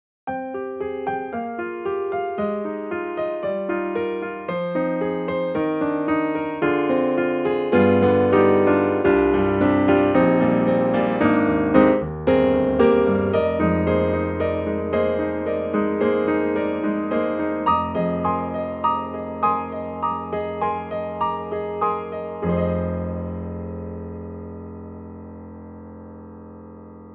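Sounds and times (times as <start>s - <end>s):
retro studio grand piano: 0.3s - 27.1s.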